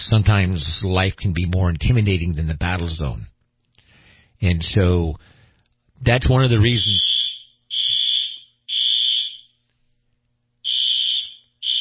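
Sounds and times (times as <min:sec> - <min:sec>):
speech: 0:00.1 - 0:03.3, 0:04.4 - 0:05.4, 0:06.0 - 0:07.2
loud shrill fire alarm blaring in long electronic tones: 0:06.8 - 0:09.6, 0:10.6 - 0:11.7.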